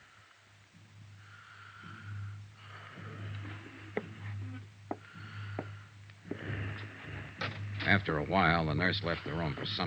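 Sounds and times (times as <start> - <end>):
wounded man breathing slowly and hoarsely in bed: 0.0 - 7.8
steady low hum: 0.0 - 9.8
speech: 7.9 - 9.8.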